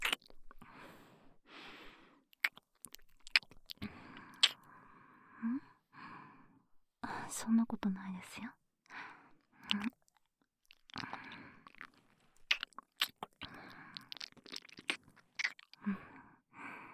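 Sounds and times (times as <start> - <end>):
person licking something tasty with wet smacking and slurping: 0.0 - 0.4, 2.4 - 4.6, 9.6 - 15.8
speech: 7.3 - 8.6, 9.7 - 10.0.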